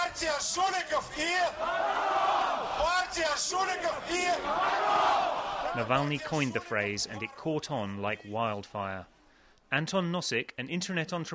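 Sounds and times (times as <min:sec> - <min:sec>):
speech: 0:00.2 - 0:11.3
large protest crowd chanting a slogan in unison: 0:01.5 - 0:02.9, 0:03.7 - 0:05.8.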